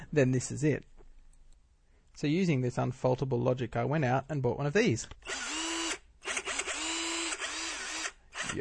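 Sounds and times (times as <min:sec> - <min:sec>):
speech: 0:00.1 - 0:01.0, 0:02.2 - 0:05.5
12-volt cordless power drill running: 0:05.2 - 0:08.5.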